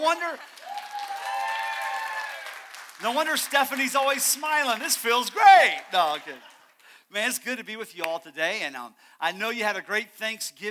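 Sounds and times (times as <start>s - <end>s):
speech: 0.0s - 0.7s, 3.0s - 6.5s, 7.1s - 10.6s
audience applauding: 0.0s - 6.9s.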